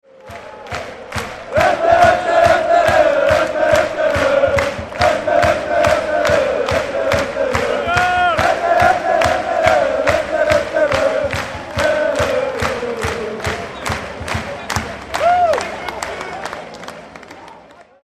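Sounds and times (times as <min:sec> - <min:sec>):
fans singing a wedding march: 0:00.1 - 0:14.6.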